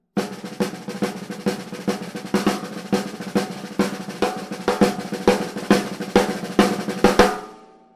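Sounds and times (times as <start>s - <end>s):
drumline: 0.2s - 7.5s.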